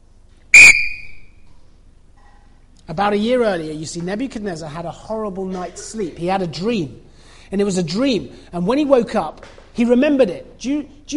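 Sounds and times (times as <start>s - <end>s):
whistle blast: 0.5s - 1.5s
speech: 2.9s - 11.1s.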